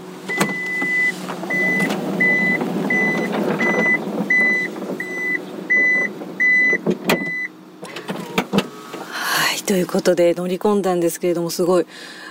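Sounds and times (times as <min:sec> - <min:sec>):
powered van door warning beeps: 0:00.3 - 0:07.5
solid clunks of a powered van door shutting: 0:00.3 - 0:09.1
speech: 0:09.7 - 0:12.2.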